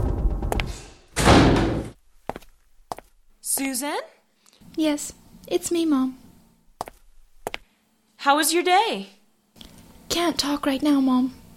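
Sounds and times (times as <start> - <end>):
door slamming shut: 0.0 - 2.0
speech: 3.5 - 4.2, 4.8 - 6.2, 8.2 - 9.2, 10.1 - 11.4.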